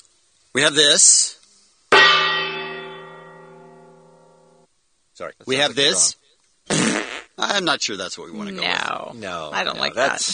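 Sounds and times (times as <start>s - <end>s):
speech: 0.6s - 1.4s, 5.2s - 10.3s
single loud metallic gong strike: 2.0s - 4.6s.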